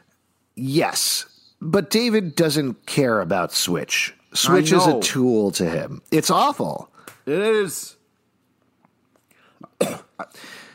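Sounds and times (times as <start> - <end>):
speech: 0.6 - 8.0
person coughing harshly: 9.7 - 10.4
breathy exhale: 10.4 - 10.7.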